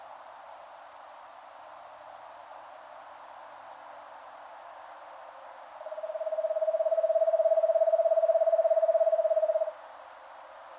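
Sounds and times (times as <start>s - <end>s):
Eastern screech owl Megascops asio giving a steady trill: 5.9s - 9.7s.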